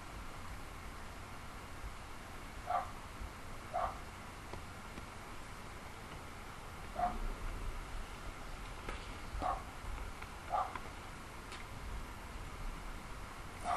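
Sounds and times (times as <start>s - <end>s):
steady hiss: 0.0s - 13.7s
neighbor's dog barking angrily: 2.7s - 2.9s, 3.7s - 4.0s, 7.0s - 7.2s, 9.4s - 9.7s, 10.5s - 10.8s.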